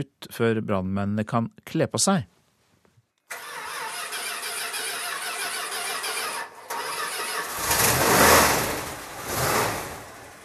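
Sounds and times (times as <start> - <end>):
speech: 0.0 - 2.4
old Dodge fire truck engine cranking with a whirring starter and revving: 3.3 - 10.4.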